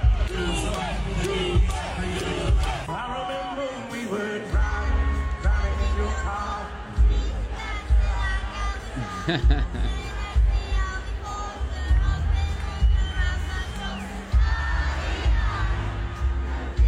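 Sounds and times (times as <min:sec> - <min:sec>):
large concert crowd singing along at a show in Boston: 0:00.0 - 0:16.8
live concert music: 0:00.0 - 0:16.8
laughter: 0:08.4 - 0:10.7.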